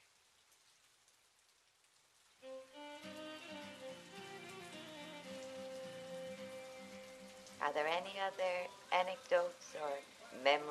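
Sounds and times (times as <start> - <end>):
rain pattering outside: 0.0 - 10.6
sustained gentle melodic tones: 2.4 - 8.7
speech: 7.7 - 10.6.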